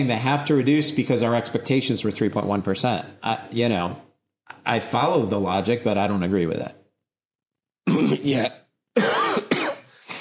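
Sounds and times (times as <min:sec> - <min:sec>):
speech: 0:00.0 - 0:06.8, 0:07.9 - 0:09.2
person coughing: 0:07.8 - 0:10.1.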